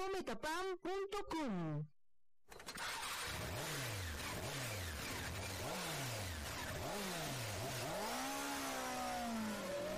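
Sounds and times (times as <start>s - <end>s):
speech: 0.0s - 1.9s
motorcycle engine revving: 2.8s - 9.9s.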